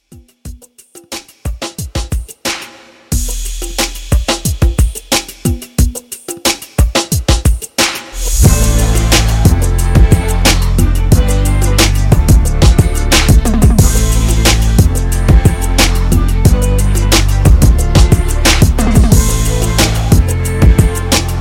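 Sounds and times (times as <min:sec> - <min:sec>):
clean drum beat: 0:03.1 - 0:21.3.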